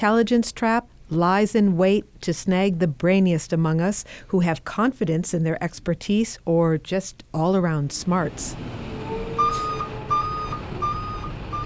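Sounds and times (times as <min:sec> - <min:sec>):
speech: 0:00.0 - 0:08.9
low rumbling truck diesel engine: 0:08.2 - 0:11.6
truck reversing alarm beeping: 0:08.9 - 0:11.6.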